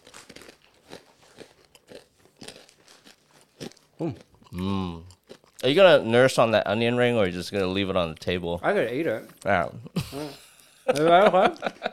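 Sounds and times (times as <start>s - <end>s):
wasabi peas crunched in front of a microphone: 0.0s - 5.8s
speech: 4.0s - 11.8s
laughter: 10.0s - 11.9s.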